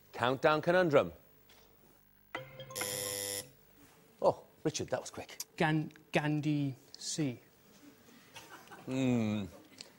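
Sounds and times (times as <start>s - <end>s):
speech: 0.2s - 1.2s, 4.2s - 7.5s, 8.8s - 9.6s
quiz game buzzer pressed in a word-puzzle game: 2.4s - 3.6s.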